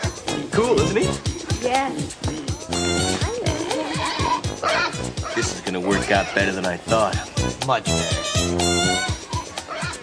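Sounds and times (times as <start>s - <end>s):
speech: 0.6s - 2.4s, 4.6s - 9.2s
pig grunts and squeals: 1.2s - 6.6s, 9.0s - 10.0s.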